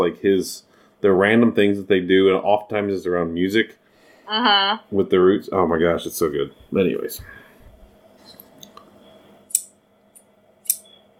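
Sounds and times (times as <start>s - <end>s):
speech: 0.0s - 7.4s
low steady hum: 0.0s - 11.1s
metal shears chopping: 10.6s - 11.0s.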